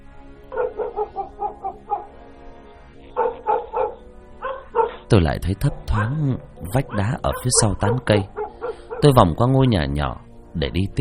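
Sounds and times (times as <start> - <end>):
dog barking inside a house: 0.5 - 2.3, 3.0 - 9.2
speech: 5.1 - 8.4, 9.0 - 11.0.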